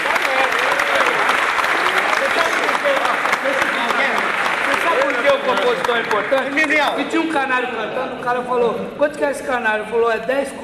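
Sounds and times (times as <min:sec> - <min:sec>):
crowd at a samba circle applauding a composer: 0:00.0 - 0:07.4
speech: 0:06.0 - 0:10.6.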